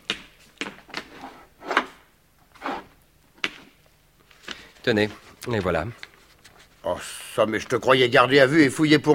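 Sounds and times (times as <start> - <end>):
wooden table drawer pulled open: 1.1 - 2.9
speech: 4.8 - 6.0, 6.8 - 9.1.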